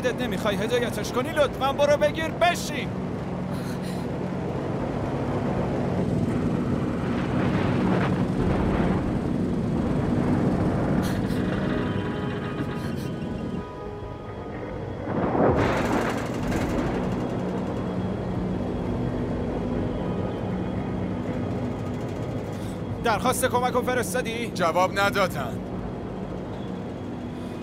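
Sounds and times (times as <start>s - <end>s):
speech: 0.0s - 3.6s, 23.1s - 25.7s
propeller engine drone: 0.0s - 27.6s
wind: 0.0s - 27.6s
thunder rumbling: 6.4s - 22.7s.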